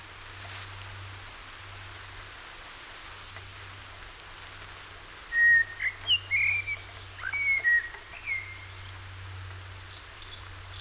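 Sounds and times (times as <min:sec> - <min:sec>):
common blackbird Turdus merula singing: 0:05.3 - 0:08.6.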